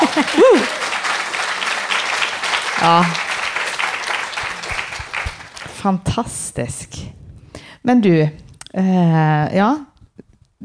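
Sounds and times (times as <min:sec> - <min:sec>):
laughter: 0:00.0 - 0:01.8
audience clapping: 0:00.0 - 0:06.1
short vocal whoop or cheer: 0:00.1 - 0:00.8
speech: 0:02.8 - 0:03.2, 0:05.8 - 0:07.2, 0:07.8 - 0:09.9.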